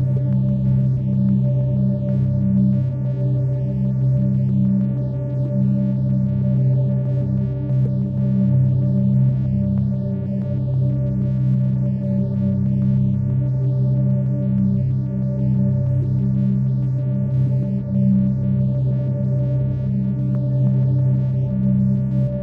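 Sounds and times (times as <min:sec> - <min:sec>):
130 Hz sine tone with resonant effects: 0:00.0 - 0:22.4.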